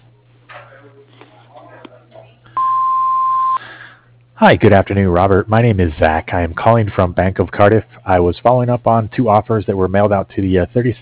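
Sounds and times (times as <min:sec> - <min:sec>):
hum: 0:00.0 - 0:11.0
speech: 0:00.8 - 0:01.7, 0:04.4 - 0:11.0
electronic answering-machine beep: 0:02.6 - 0:03.6.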